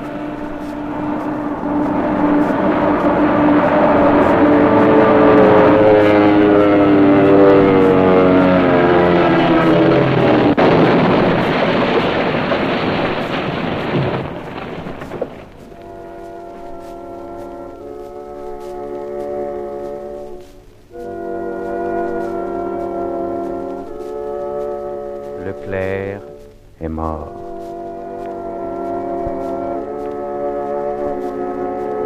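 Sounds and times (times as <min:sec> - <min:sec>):
propeller airplane flying to Colomb-Béchar droning overhead: 0:00.0 - 0:32.0.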